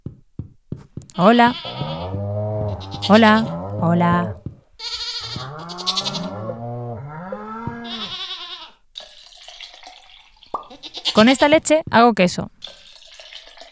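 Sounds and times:
goats bleating in a stable: 1.1 - 8.8, 10.6 - 11.6
speech: 1.2 - 1.8, 2.8 - 5.0, 11.2 - 12.6.

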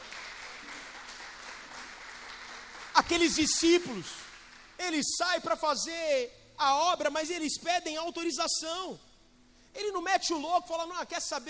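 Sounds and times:
church congregation applauding during a sermon: 0.0 - 5.5
speech: 3.1 - 4.2, 4.9 - 9.1, 9.8 - 11.4.

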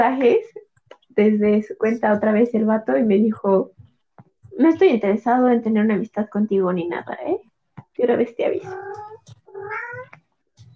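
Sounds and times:
speech: 0.0 - 0.5, 1.2 - 3.8, 4.6 - 10.1
angry cat yowling: 8.8 - 10.1.

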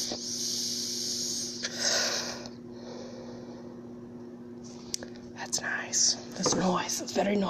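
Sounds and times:
person inhaling vapor from a dab rig: 0.0 - 3.6
speech: 5.5 - 7.4.

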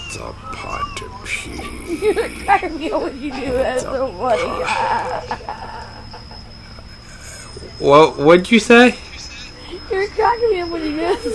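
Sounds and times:
person imitating puppy whimpers and yips: 0.0 - 5.3
speech: 0.1 - 5.8, 7.8 - 9.0, 9.9 - 11.3
laughter: 1.3 - 7.5.

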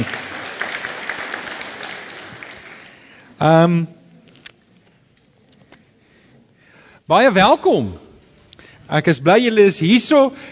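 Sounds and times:
audience applause: 0.0 - 3.1
speech: 3.4 - 4.0, 7.1 - 8.0, 8.9 - 10.4.

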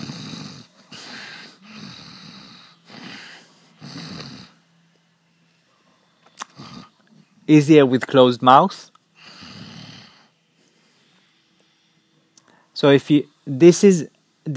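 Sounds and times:
several people imitating snoring: 0.0 - 4.6, 6.4 - 7.2, 9.2 - 10.4
quieter breathing: 0.7 - 4.0, 9.2 - 12.8
speech: 7.5 - 8.9, 12.8 - 14.5.

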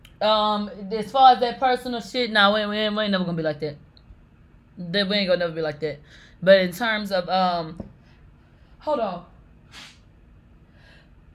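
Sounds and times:
speech: 0.2 - 3.9, 4.8 - 7.9, 8.8 - 9.9
sneeze: 9.7 - 10.0.

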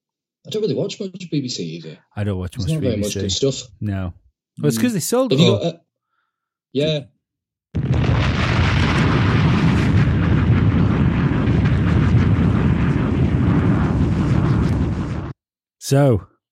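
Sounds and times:
speech: 0.4 - 5.8, 6.7 - 7.1, 15.9 - 16.3
explosions roaring: 7.8 - 15.4.

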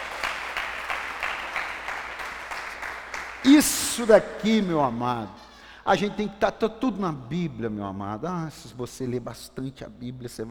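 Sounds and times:
audience applauding: 0.0 - 4.8
speech: 3.4 - 10.5.

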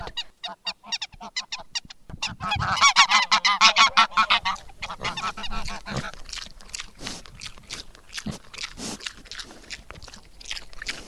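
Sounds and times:
geese on a farm honking: 0.0 - 6.1
farm animals clucking and snorting: 0.0 - 11.0.

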